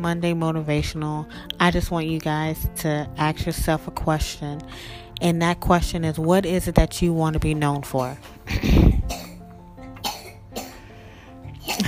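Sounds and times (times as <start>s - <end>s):
speech: 0.0s - 8.8s
young boy coughing: 8.0s - 10.8s, 11.6s - 11.8s.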